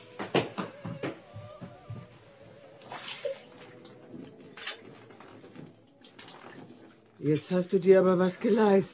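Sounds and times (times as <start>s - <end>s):
tea pouring and spilling into a bed: 2.8s - 7.4s
speech: 7.2s - 8.9s.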